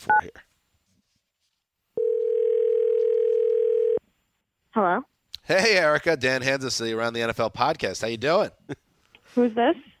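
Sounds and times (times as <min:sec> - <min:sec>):
speech: 0:00.0 - 0:00.4, 0:04.8 - 0:09.9
telephone dial tone while placing a call: 0:02.0 - 0:04.0.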